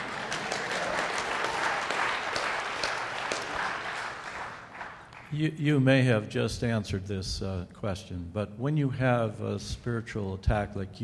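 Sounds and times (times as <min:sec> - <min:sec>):
audience clapping: 0:00.0 - 0:05.5
speech: 0:05.3 - 0:11.0.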